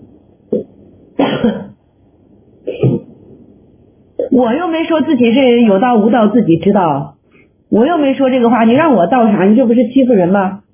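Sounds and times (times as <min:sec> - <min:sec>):
coughing: 0:00.5 - 0:01.8, 0:02.6 - 0:03.1, 0:04.2 - 0:04.4
throat clearing: 0:00.5 - 0:01.8, 0:02.6 - 0:03.1
speech: 0:01.4 - 0:01.7, 0:04.4 - 0:10.6.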